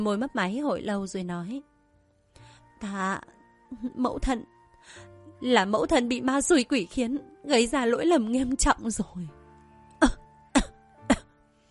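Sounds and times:
speech: 0.0s - 1.7s, 2.8s - 9.4s, 10.0s - 10.2s
woman coughing harshly: 10.0s - 11.4s.

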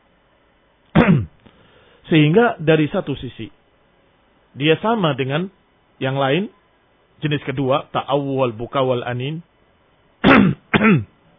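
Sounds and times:
deliberately forced throaty coughs during prayer: 0.9s - 1.4s, 10.2s - 11.2s
speech: 2.1s - 3.6s, 4.5s - 6.6s, 7.2s - 9.5s, 10.4s - 11.1s.

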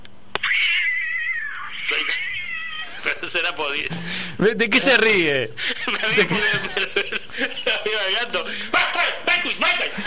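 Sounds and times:
Persian cat giving a long wailing meow: 0.4s - 3.2s
speech: 3.3s - 8.8s
laughter: 5.5s - 8.7s, 9.4s - 10.0s.

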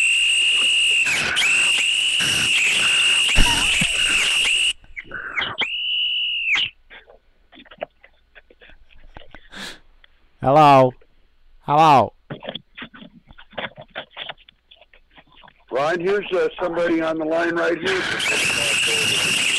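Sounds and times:
shorter whistles swooping in pitch: 0.0s - 6.8s, 18.2s - 19.5s
person whistling a sustained piercing high tone: 3.2s - 4.8s
speech: 10.4s - 11.0s, 11.7s - 12.2s, 15.8s - 18.5s.

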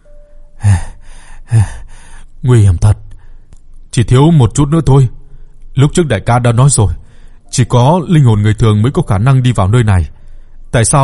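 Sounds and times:
man gasping and panting as he steadies himself: 0.6s - 2.2s
speech: 1.5s - 1.8s, 2.4s - 3.0s, 4.0s - 5.2s, 5.8s - 11.0s.

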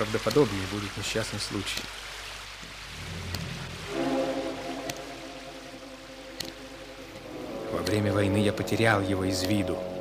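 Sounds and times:
speech: 0.0s - 2.1s, 7.8s - 9.9s
rain hissing: 0.0s - 9.9s
low tonal drone: 2.9s - 9.9s.

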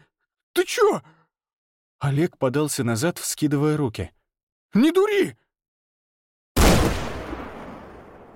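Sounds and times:
speech: 0.6s - 1.2s, 2.0s - 5.4s
gunshot echoing through taiga forest of pine and spruce: 6.6s - 8.3s.

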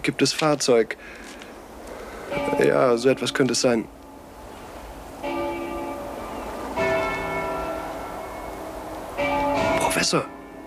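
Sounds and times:
speech: 0.0s - 1.2s, 2.3s - 4.0s, 10.0s - 10.4s
low hiss: 0.0s - 10.6s
church bells ringing: 2.3s - 4.3s, 5.2s - 10.6s.

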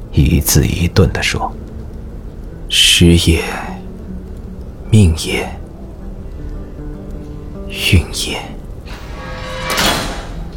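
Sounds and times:
low noise: 0.0s - 10.5s
speech: 0.2s - 1.7s, 2.7s - 3.8s, 4.9s - 5.6s, 7.7s - 8.5s
prison cell door clanging shut: 8.9s - 10.5s.

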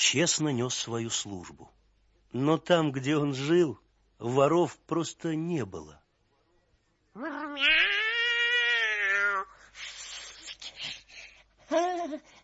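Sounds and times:
speech: 0.0s - 6.0s, 7.2s - 8.0s, 11.7s - 12.4s
cat meowing: 7.2s - 9.5s.

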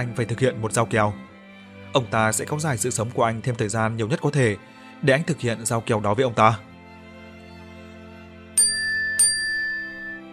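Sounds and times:
speech: 0.0s - 1.3s, 1.9s - 6.7s
phone message notification chiming dings: 8.6s - 10.2s
soft steady tone: 8.6s - 10.3s.

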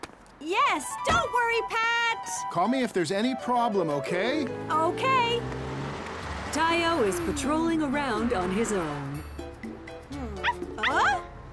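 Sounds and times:
speech: 0.4s - 5.7s, 6.5s - 9.1s
lone puppy yipping and whimpering: 10.4s - 11.2s.

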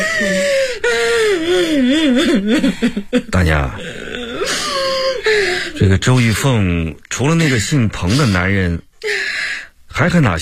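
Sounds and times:
old woman crying: 0.0s - 6.0s, 7.4s - 9.4s
speech: 1.8s - 4.0s, 5.3s - 8.9s, 10.0s - 10.4s.

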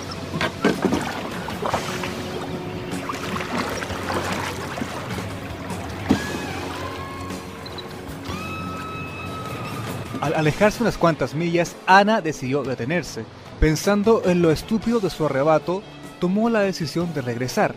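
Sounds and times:
water sloshing and splashing as a small boat is rowed out to sea: 0.0s - 10.7s
speech: 10.2s - 17.7s.

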